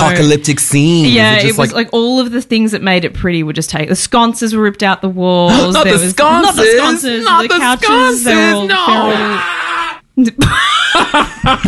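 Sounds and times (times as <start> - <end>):
speech: 0.1 - 9.6, 10.2 - 11.6
man screaming in pain: 8.3 - 10.0
laughter: 10.4 - 11.6.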